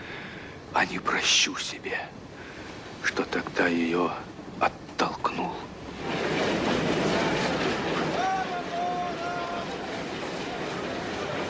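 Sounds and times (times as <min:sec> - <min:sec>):
speech: 0:00.7 - 0:02.3, 0:03.0 - 0:06.2
departing train wheels clattering on rails: 0:05.8 - 0:11.4
faint indistinct voices: 0:06.8 - 0:11.4.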